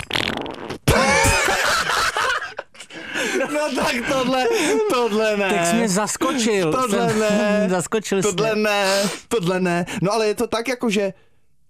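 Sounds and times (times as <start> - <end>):
loud fart: 0.0 - 1.1
laughter: 0.9 - 8.8
speech: 3.6 - 11.3.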